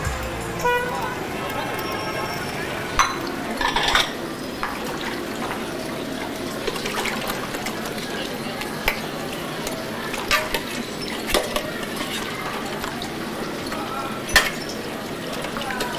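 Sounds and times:
running water: 0.0 - 15.9
dishes clattering and clinking in a sink: 1.5 - 8.1, 10.1 - 15.9.

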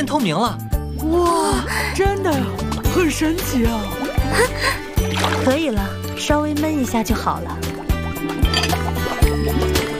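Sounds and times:
speech: 0.0 - 8.8
cooked sago pearls poured into cold water: 1.1 - 9.9.

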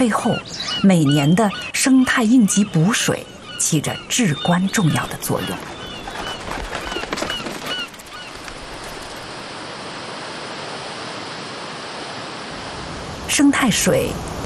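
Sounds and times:
speech: 0.0 - 5.8, 13.4 - 14.3
flock of migratory birds honking at a national wetland park: 0.7 - 9.3
steady rushing wash of water-like noise: 7.5 - 14.4.

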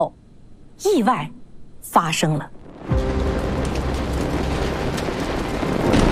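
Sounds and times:
speech: 0.8 - 2.6
iron-smelting furnace explosion roaring rumble: 2.6 - 6.1.

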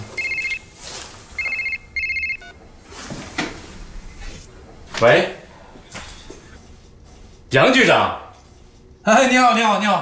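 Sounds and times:
telephone ringing: 0.0 - 2.6
speech: 5.0 - 5.4, 7.5 - 8.2, 9.0 - 10.0.

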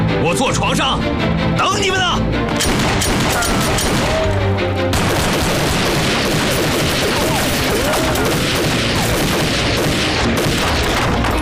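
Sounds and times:
speech: 0.1 - 5.0
chaotic gunfire volley in a firefight near Lincheng: 2.6 - 4.3, 4.9 - 11.3
voices shouting in a firefight: 3.2 - 4.6, 6.9 - 9.2.

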